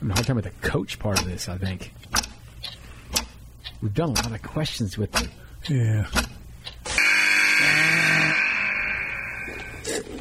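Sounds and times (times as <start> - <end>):
speech: 0.1 - 2.8, 3.8 - 6.4
game show buzzer: 6.9 - 9.9.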